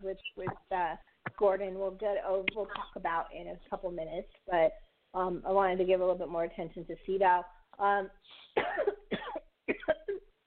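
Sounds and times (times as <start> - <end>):
speech: 0.2 - 8.9
person coughing from choking on coffee: 8.5 - 10.3.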